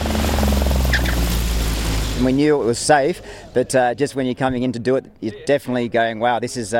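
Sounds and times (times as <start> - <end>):
spinning propeller pulsing: 0.0 - 2.3
propeller plane engine droning while landing on a race track: 0.0 - 3.6
speech: 2.2 - 6.7.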